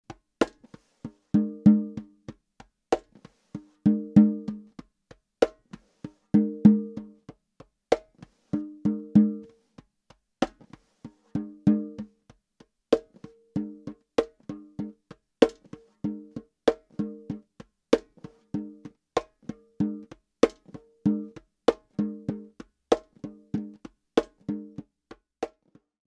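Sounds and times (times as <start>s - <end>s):
hand drum: 0.1s - 25.6s.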